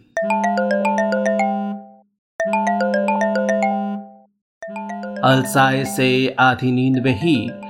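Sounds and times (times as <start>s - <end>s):
phone ringing with a bright electronic melodic tone: 0.0s - 7.6s
speech: 5.2s - 7.6s.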